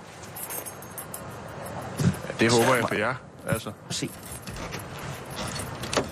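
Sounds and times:
keys jangling: 0.2s - 2.3s, 4.0s - 6.0s
speech: 2.4s - 4.4s
key turning in door lock with scraping metallic rattles: 4.4s - 6.0s.

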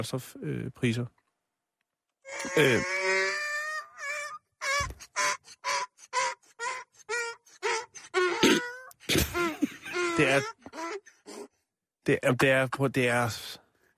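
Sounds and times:
speech: 0.0s - 1.2s, 2.3s - 3.0s, 10.2s - 10.8s, 12.0s - 13.5s
donkey braying: 2.2s - 11.5s.

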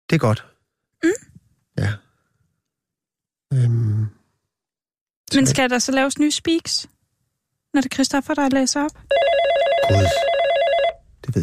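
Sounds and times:
speech: 0.1s - 2.0s, 5.3s - 7.0s, 7.7s - 10.3s, 11.2s - 11.4s
telephone ringing with trilling electronic tone: 9.1s - 11.0s.

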